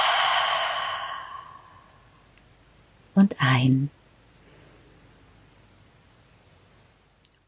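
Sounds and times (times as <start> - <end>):
deep slow breath in and out: 0.0 - 2.2
speech: 3.2 - 4.0.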